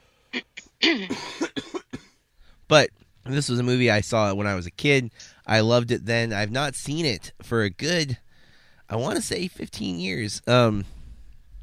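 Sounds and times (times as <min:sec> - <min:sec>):
person having a coughing fit with harsh raspy coughs: 0:00.4 - 0:02.2
throaty clearing sounds: 0:00.4 - 0:02.2
speech: 0:00.9 - 0:01.4, 0:02.7 - 0:08.2, 0:08.9 - 0:11.0.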